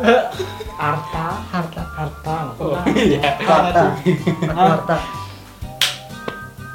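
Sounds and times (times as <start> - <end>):
speech: 0.0 - 2.2, 3.0 - 5.2
laughter: 0.0 - 5.2
faint tonal background: 0.0 - 6.7
sharp hand clap: 5.6 - 6.6.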